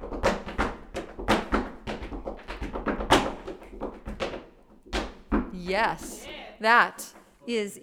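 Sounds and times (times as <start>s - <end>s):
tap dancing heel thuds: 0.0s - 5.6s
tap dancing steps: 0.0s - 6.2s
speech: 5.6s - 7.8s.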